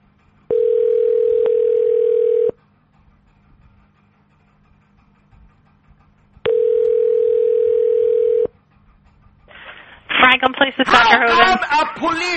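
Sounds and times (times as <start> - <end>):
electronic telephone transfer tones on a call to a police department in New Jersey: 0.5 - 2.5, 6.5 - 8.5
speech: 10.7 - 12.3.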